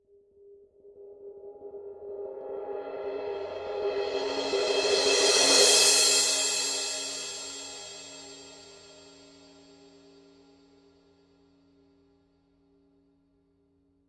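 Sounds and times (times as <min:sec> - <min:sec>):
Paiste 2002 18-inch crash cymbal swell: 0:03.1 - 0:10.2.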